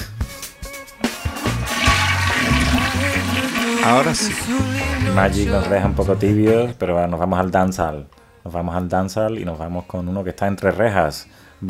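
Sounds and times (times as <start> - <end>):
toilet flushing water rush: 1.4 - 5.2
speech: 3.8 - 11.6.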